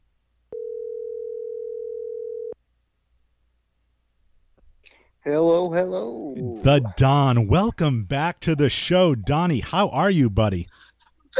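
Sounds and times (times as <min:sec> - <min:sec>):
faint noise: 0:00.0 - 0:11.3
telephone dial tone while placing a call: 0:00.5 - 0:02.6
speech: 0:05.2 - 0:11.3.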